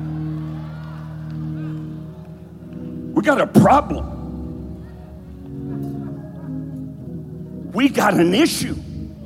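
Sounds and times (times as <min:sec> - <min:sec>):
audience shouting and whooping: 0:00.0 - 0:02.6
speech: 0:03.2 - 0:04.1, 0:07.8 - 0:08.8.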